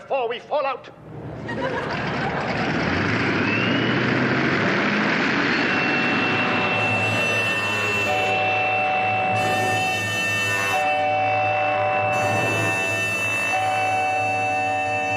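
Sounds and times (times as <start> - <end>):
speech: 0.1 - 2.8
aeroplane engines droning in flight: 0.9 - 15.1
laughter: 1.3 - 2.8
whining tones of aeroplane engines: 3.1 - 4.3, 5.0 - 15.1.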